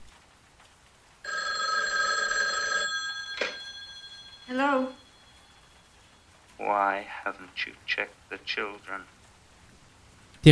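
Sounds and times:
telephone ringing with electronic tone: 1.3s - 5.9s
speech: 6.7s - 9.2s.

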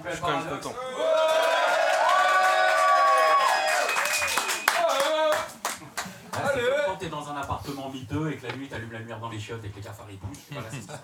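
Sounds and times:
speech: 0.0s - 1.1s, 6.6s - 11.0s
whooping voices: 0.8s - 5.4s
crowd clapping and cheering to call back latecomers: 1.0s - 6.4s.

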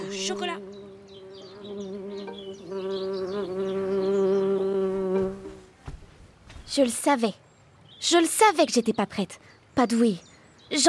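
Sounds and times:
bee buzzing: 0.0s - 5.8s
faint birdsong chirping: 0.0s - 10.8s
speech: 0.2s - 0.7s, 6.7s - 7.4s, 8.0s - 10.8s.

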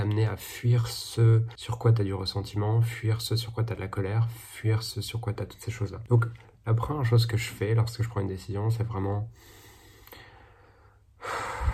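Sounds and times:
speech: 0.2s - 9.6s
deep breath in: 9.4s - 11.7s.

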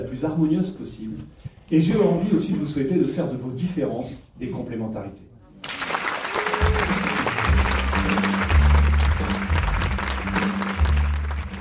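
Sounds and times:
speech: 0.0s - 5.3s
large audience applauding after a show: 5.6s - 11.6s.

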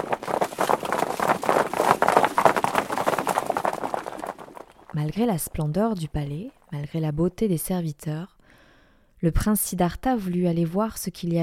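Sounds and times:
horse hooves clip-clopping: 0.0s - 6.8s
speech: 5.0s - 8.3s, 9.2s - 11.4s.

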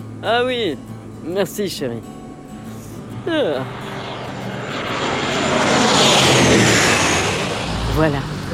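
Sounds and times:
speech: 0.2s - 2.2s, 3.2s - 5.0s, 8.0s - 8.3s
jet airplane landing and taxiing on runway: 2.8s - 8.5s.

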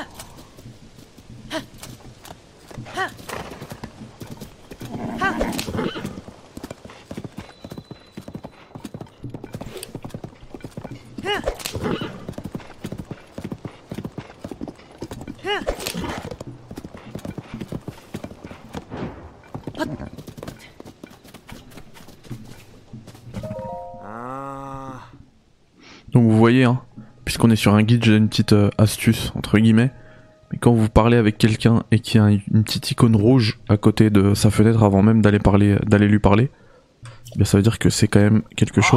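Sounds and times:
horse hooves clip-clopping at a riding pace: 0.0s - 23.4s
horse whinnying or snorting: 4.8s - 6.3s, 11.2s - 12.3s
speech: 26.6s - 30.0s, 30.6s - 36.6s, 37.4s - 38.9s.

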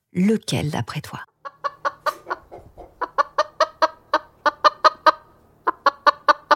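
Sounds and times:
speech: 0.1s - 1.3s
chickens clucking: 1.4s - 6.5s.

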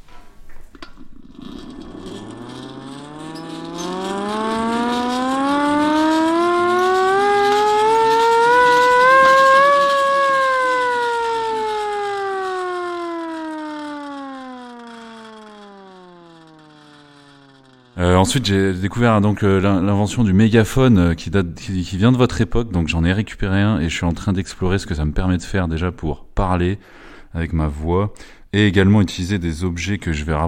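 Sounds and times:
small hand-cranked siren wailing: 1.1s - 19.3s
speech: 18.3s - 30.4s.

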